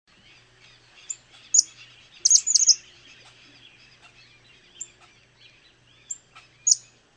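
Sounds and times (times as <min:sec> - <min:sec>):
faint bird chatter: 0:00.1 - 0:07.1
cattle tyrant Machetornis rixosa rixosa calling: 0:00.6 - 0:05.3, 0:06.0 - 0:06.9.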